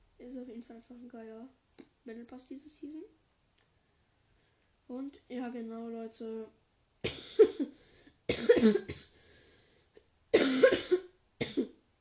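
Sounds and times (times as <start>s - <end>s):
speech: 0.2s - 3.2s, 4.9s - 9.0s
person coughing in harsh throaty bursts: 7.0s - 9.2s, 10.4s - 11.8s.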